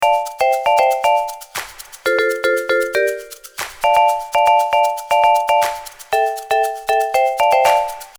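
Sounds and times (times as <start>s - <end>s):
vibraphone: 0.0s - 8.1s.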